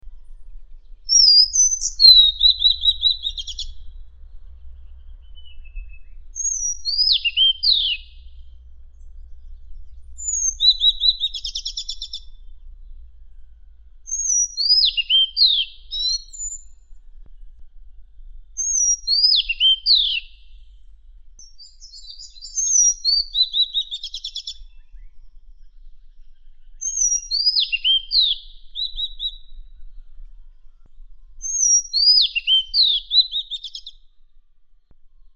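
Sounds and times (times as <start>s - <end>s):
Madagascar magpie-robin singing: 1.0s - 4.0s, 5.0s - 8.4s, 10.2s - 12.4s, 14.1s - 16.8s, 18.6s - 20.6s, 21.4s - 29.7s, 31.4s - 34.0s.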